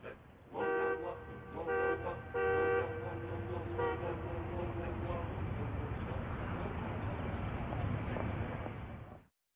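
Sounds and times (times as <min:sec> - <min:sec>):
steady rumble of street traffic: 0:00.0 - 0:09.3
car horn honking: 0:00.6 - 0:05.0.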